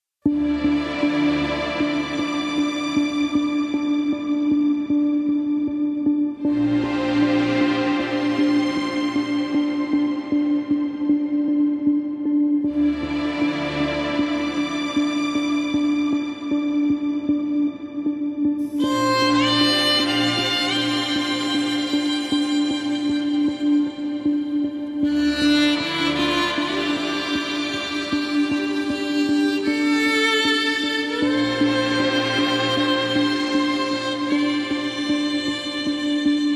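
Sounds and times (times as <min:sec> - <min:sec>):
light serious documentary soundscape music: 0:00.3 - 0:36.5
violin solo: 0:00.3 - 0:36.5.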